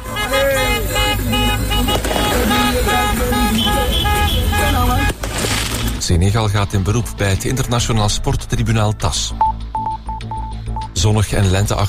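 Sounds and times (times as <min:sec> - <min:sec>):
car horns honking in street celebration: 0:00.0 - 0:05.3
passing traffic rumble: 0:00.0 - 0:07.6
speech: 0:06.1 - 0:09.5, 0:11.0 - 0:11.8.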